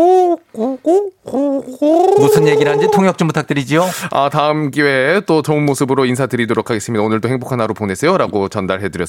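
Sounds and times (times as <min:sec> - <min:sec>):
man imitating pigeon cooing as a greeting: 0:00.0 - 0:03.2
speech: 0:00.0 - 0:09.0.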